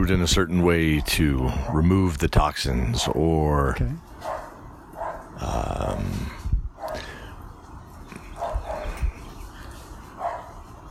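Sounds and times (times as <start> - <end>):
speech: 0.0 - 4.1, 5.4 - 6.4
several angry dogs barking next door: 4.1 - 5.4, 6.7 - 7.4, 8.2 - 10.8.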